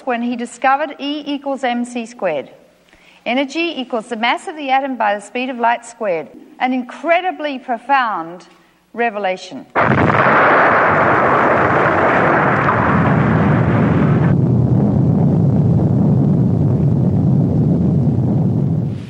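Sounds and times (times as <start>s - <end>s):
speech: 0.0s - 2.6s, 3.2s - 11.2s
huge explosion with deep heavy rumble: 9.8s - 19.0s.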